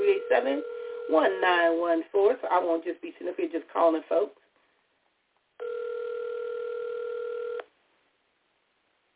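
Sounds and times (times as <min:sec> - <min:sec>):
ringback tone of an outgoing phone call over a band-limited phone line: 0:00.0 - 0:01.4, 0:05.6 - 0:07.7
speech: 0:00.5 - 0:04.4.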